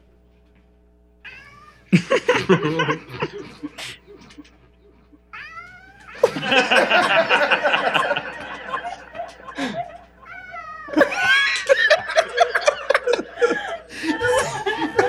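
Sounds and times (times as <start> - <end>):
laughter: 1.9 - 5.2, 6.0 - 15.0
person imitating a yowling cat: 5.4 - 6.4, 10.2 - 11.6.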